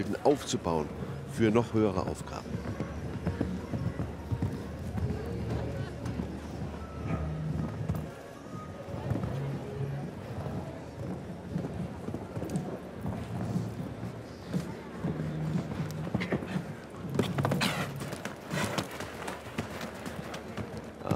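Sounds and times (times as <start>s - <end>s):
speech: 0.0s - 2.8s
ambient crowd noise: 0.0s - 21.1s
horse hoofbeats in an arena during a tournament round: 0.0s - 21.1s.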